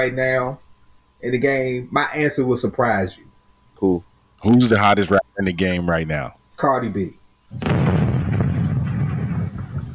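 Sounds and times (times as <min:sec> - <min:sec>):
speech: 0:00.0 - 0:00.6, 0:01.2 - 0:07.8
explosion sound effect with booming rumble: 0:07.6 - 0:09.9.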